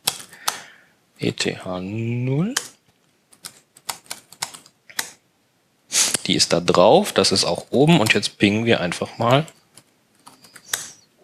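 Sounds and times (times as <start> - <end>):
laptop keyboard clicks as an IP address is typed: 0.0 - 0.6, 2.4 - 5.2, 9.2 - 11.0
speech: 1.2 - 2.7, 6.3 - 9.6.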